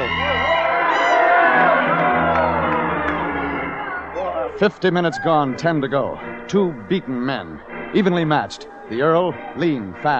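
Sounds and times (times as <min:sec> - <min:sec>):
large wrestling arena crowd cheering and whooping during a match: 0:00.0 - 0:04.7
speech: 0:04.6 - 0:10.1.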